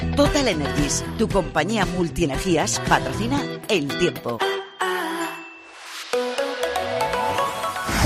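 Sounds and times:
speech: 0.2 - 4.6
short chiming jingle with a rising tone: 4.5 - 7.9.

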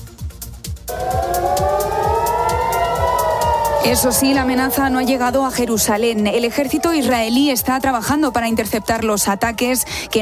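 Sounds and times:
low thumping pulse: 0.9 - 6.5
air-raid siren wailing: 0.9 - 7.8
speech: 3.8 - 10.1.

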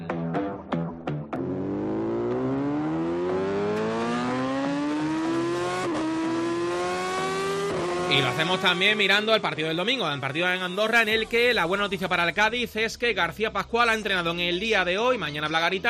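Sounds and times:
Yamaha motorcycle engine starting and revving: 1.3 - 9.5
speech: 8.1 - 15.8.

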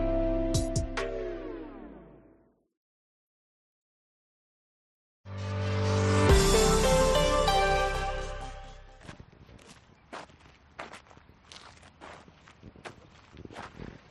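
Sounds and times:
short stretch of music: 0.0 - 2.6, 5.3 - 9.0
footsteps walking on a path in nature: 9.0 - 14.1.

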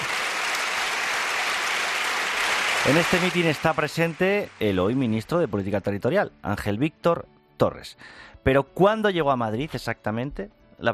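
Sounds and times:
crowd applauding at a political rally: 0.0 - 5.6
speech: 2.8 - 10.9.

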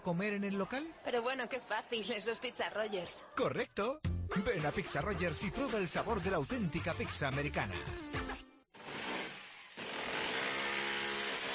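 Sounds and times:
speech: 0.0 - 8.1
electric power drill running: 8.8 - 11.5.

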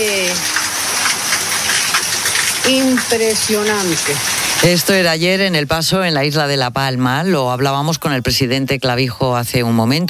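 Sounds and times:
heavy rain downpour pounding surfaces: 0.0 - 6.5
speech: 2.7 - 10.0.

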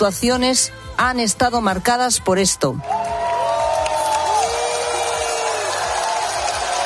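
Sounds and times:
speech: 0.0 - 3.1
large crowd roaring: 2.9 - 6.8.

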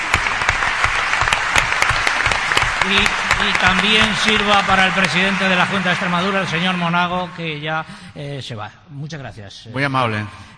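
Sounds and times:
audience applause: 0.0 - 8.0
speech: 2.8 - 10.5.

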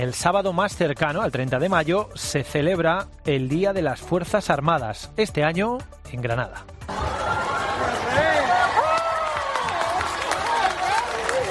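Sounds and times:
speech: 0.0 - 7.0
dense crowd cheering at Plaza Albert Einstein in Granada Spain on Armed Forces Day: 6.9 - 11.5
scattered clapping: 8.1 - 11.5.

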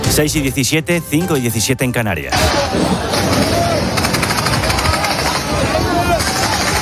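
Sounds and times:
speech: 0.1 - 3.5
indistinct voices and commotion: 2.3 - 6.8
automatic gunfire bursts: 3.1 - 6.8.

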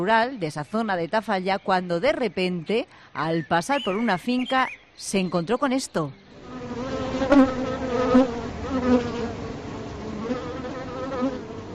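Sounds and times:
speech: 0.0 - 7.6
swarm of thousands of bees buzzing: 6.3 - 11.7.

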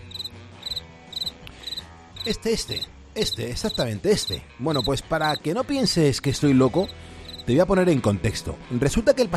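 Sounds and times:
cricket chirping in rapid high-pitched trills: 0.1 - 2.8
speech: 2.2 - 9.3.

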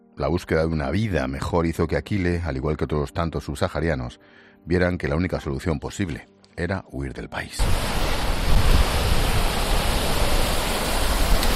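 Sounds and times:
speech: 0.2 - 8.0
sea waves: 7.6 - 11.5.

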